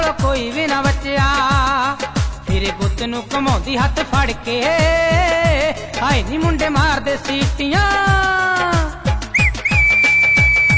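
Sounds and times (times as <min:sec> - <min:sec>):
driving drumbeat: 0:00.0 - 0:10.7
speech: 0:02.6 - 0:09.0
whistling in a Punjabi song: 0:09.3 - 0:10.7.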